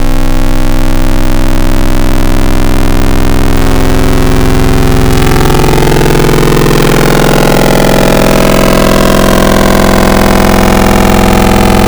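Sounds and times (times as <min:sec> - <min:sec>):
future house wavetable synth harmonics: 0:00.0 - 0:11.8.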